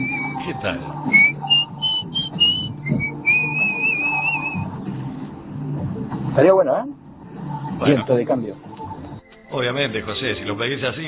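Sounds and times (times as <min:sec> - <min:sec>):
person whistling a song intro melody: 0:00.0 - 0:04.7
speech: 0:00.5 - 0:01.3, 0:06.4 - 0:07.0, 0:07.8 - 0:08.7, 0:09.5 - 0:11.0.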